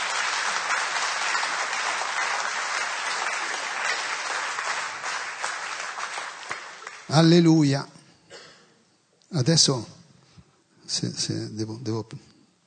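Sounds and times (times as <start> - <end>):
sharp individual claps: 0.0 - 7.2
congregation applauding: 0.0 - 7.5
speech: 7.1 - 8.0, 9.3 - 10.0, 10.9 - 12.3.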